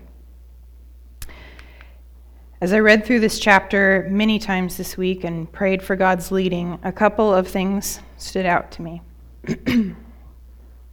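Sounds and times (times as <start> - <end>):
speech: 2.6 - 10.0
person clearing throat: 9.4 - 10.3.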